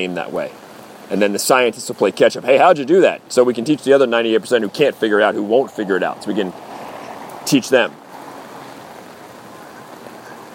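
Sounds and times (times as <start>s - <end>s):
speech: 0.0s - 6.7s, 7.4s - 8.0s
rain falling: 0.0s - 10.5s.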